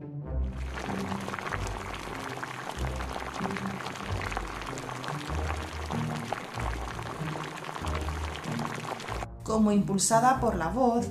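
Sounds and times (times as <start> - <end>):
water boiling vigorously for an infusion: 0.5 - 9.3
speech: 9.5 - 11.1.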